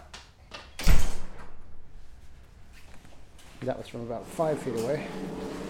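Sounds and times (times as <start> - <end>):
kitchen door swinging shut with a heavy thud: 0.8 - 2.0
speech: 3.7 - 5.6.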